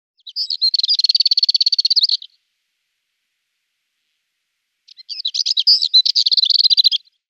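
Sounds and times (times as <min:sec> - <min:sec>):
Marmora's warbler Sylvia sarda singing: 0:00.2 - 0:02.4, 0:04.9 - 0:07.2.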